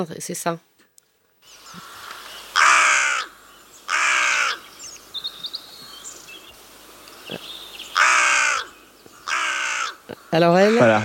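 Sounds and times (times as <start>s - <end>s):
speech: 0.0s - 0.7s, 10.3s - 11.0s
faint chirps of smaller birds: 1.4s - 11.0s
carrion crow giving harsh caws with harmonic bands: 1.6s - 4.7s, 7.9s - 11.0s.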